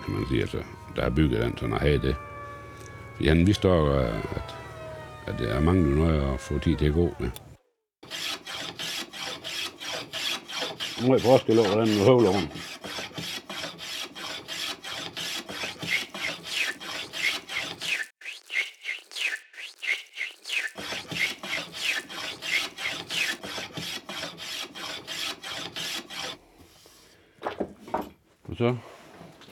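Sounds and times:
speech: 0.1s - 2.3s, 3.2s - 4.6s, 5.3s - 7.4s, 11.0s - 12.7s, 28.6s - 28.9s
sandpaper rasping over a piece of wood: 8.1s - 26.9s.

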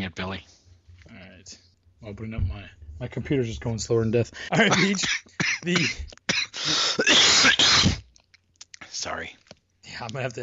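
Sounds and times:
speech: 0.1s - 0.6s, 1.4s - 7.9s, 9.0s - 10.4s
person coughing into the microphone: 4.6s - 8.1s
person clearing throat against the microphone: 4.7s - 8.1s.

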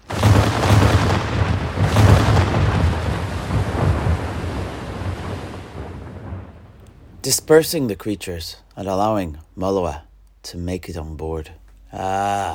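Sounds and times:
heavy cannon fire booming: 0.0s - 6.9s
speech: 7.3s - 12.5s.

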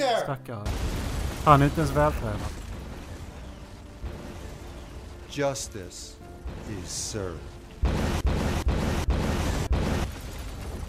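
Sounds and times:
speech: 0.2s - 2.6s, 5.3s - 8.0s
loud rumbling explosion sound effect: 0.7s - 5.4s, 6.4s - 10.8s.

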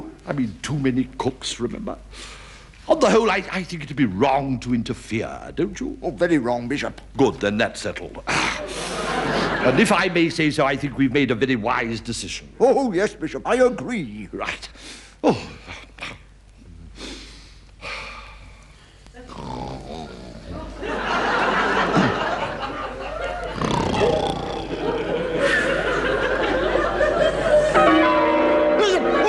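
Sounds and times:
speech: 0.3s - 15.5s
laughter: 8.3s - 10.2s, 20.5s - 28.0s
church bells ringing: 27.5s - 29.2s.

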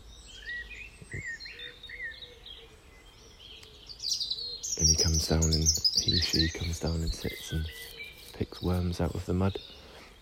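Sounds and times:
robin singing: 0.0s - 10.2s
speech: 5.3s - 9.7s.

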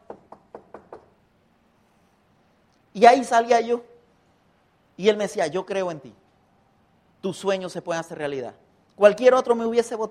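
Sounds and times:
knocks on a door: 0.0s - 1.1s
speech: 0.1s - 0.3s, 3.0s - 3.9s, 5.0s - 6.2s, 7.2s - 10.0s.

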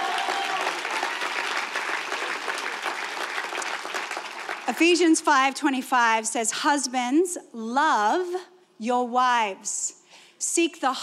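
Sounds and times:
sizable crowd applauding: 0.0s - 4.9s
speech: 4.7s - 11.0s.

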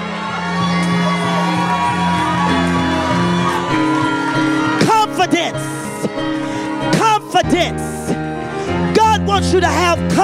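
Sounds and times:
sharper whoops from the congregation: 0.0s - 5.9s
congregation screaming and shouting together: 0.0s - 10.2s
speech: 9.4s - 10.2s.

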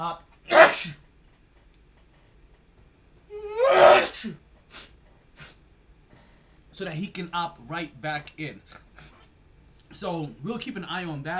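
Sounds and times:
speech: 0.0s - 1.0s, 3.7s - 4.9s, 6.8s - 9.1s, 9.9s - 11.3s
sharp explosive sneezes: 0.5s - 1.0s, 3.3s - 5.6s.

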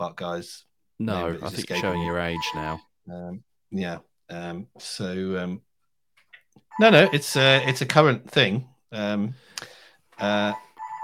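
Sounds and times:
speech: 0.0s - 5.7s, 6.6s - 10.6s
mobile phone ringing: 1.7s - 2.8s, 6.7s - 7.9s, 10.3s - 11.0s.

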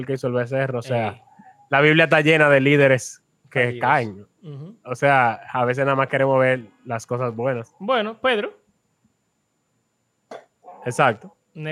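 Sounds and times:
speech: 0.0s - 8.6s, 10.8s - 11.6s
dog barking: 10.6s - 11.2s.

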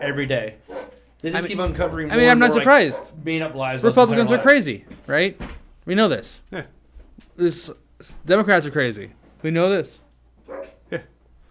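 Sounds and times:
speech: 0.0s - 6.8s, 7.4s - 11.1s
female wolf dog barking: 0.7s - 1.0s, 1.7s - 3.2s, 10.5s - 10.9s.

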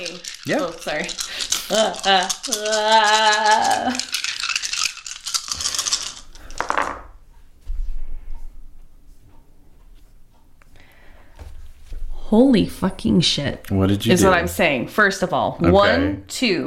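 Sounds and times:
speech: 0.0s - 4.1s, 12.3s - 16.6s
gem dice rolling and rattling: 0.0s - 7.2s
person calling out: 1.7s - 4.0s, 15.6s - 16.3s.

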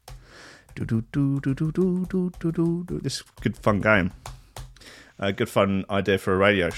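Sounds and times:
typing on a sticky laptop keyboard: 0.0s - 4.8s
person making vocal sounds: 0.6s - 4.1s
speech: 0.8s - 4.4s, 5.2s - 6.7s.

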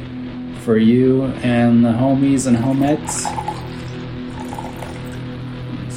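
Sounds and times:
speech: 0.7s - 3.5s
shochu and sparkling water pouring into glass: 2.5s - 5.4s.

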